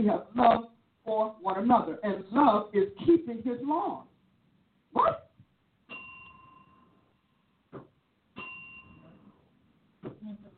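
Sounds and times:
speech: 0.0 - 4.1, 4.9 - 5.2
bell ringing with a bright tone: 5.9 - 7.1, 8.4 - 9.4.

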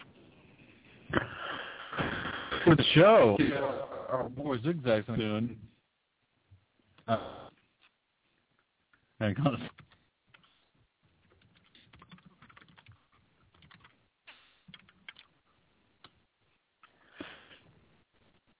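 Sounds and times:
speech: 2.7 - 5.7, 7.1 - 7.4, 9.2 - 9.8
typing on a computer keyboard: 11.2 - 14.0, 14.7 - 15.3.

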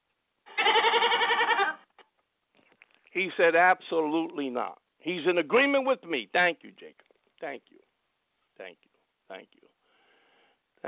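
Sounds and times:
goat bleating: 0.5 - 1.9
speech: 3.2 - 7.9, 8.6 - 9.7.

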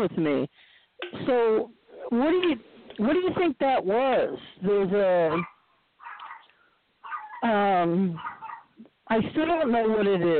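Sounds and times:
speech: 0.0 - 5.5, 7.4 - 8.4, 9.1 - 10.3
dog whining: 5.3 - 7.4, 8.1 - 8.8.

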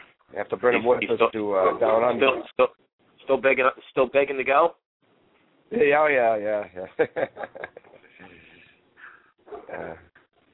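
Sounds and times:
speech: 0.3 - 4.8, 5.7 - 8.5, 9.5 - 10.1
dog barking in sharp yaps: 1.6 - 2.5, 9.5 - 9.7
laughter: 6.9 - 8.2, 9.6 - 10.0.

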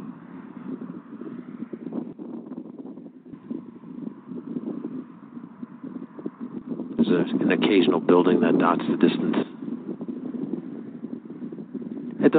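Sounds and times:
road traffic rumble: 0.0 - 12.3
trucks passing at a distance: 0.0 - 12.3
windy continuous roar: 0.0 - 12.3
speech: 7.1 - 9.4.

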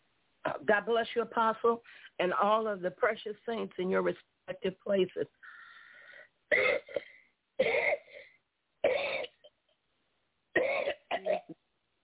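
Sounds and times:
speech: 0.6 - 5.5, 6.5 - 8.0
person coughing and clearing throat to bring up mucus during a prayer for healing: 6.5 - 9.6, 10.6 - 11.6.

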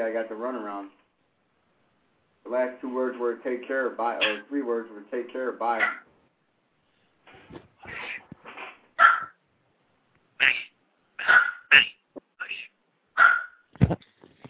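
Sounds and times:
speech: 0.0 - 1.0, 2.4 - 6.0
small dog barking: 9.0 - 9.4, 13.2 - 13.7.

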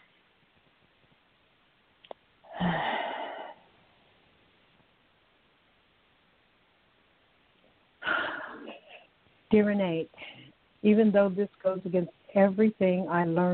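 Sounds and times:
deep breaths during a guided relaxation exercise: 2.5 - 3.9, 8.0 - 8.8
speech: 9.5 - 13.5.

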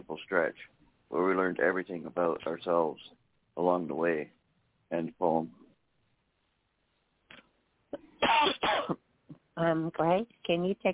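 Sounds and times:
speech: 0.3 - 5.6, 8.3 - 9.0, 9.6 - 10.9
person coughing: 8.2 - 9.0.

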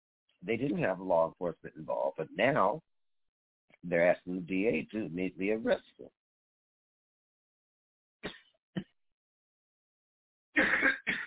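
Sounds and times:
speech: 0.4 - 2.9, 3.8 - 6.2
person coughing: 10.6 - 11.2
throat clearing: 10.6 - 11.2.

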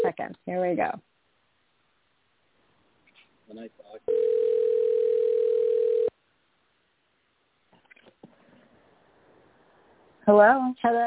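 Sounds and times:
speech: 0.3 - 1.2, 3.5 - 4.8, 10.3 - 11.0
telephone ringback tone of an outgoing call: 4.1 - 6.1.

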